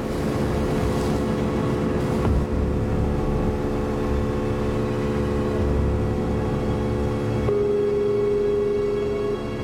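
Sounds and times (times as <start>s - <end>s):
rushing water from a speeding boat: 0.0s - 6.7s
customs agents' boat engine droning: 0.0s - 9.6s.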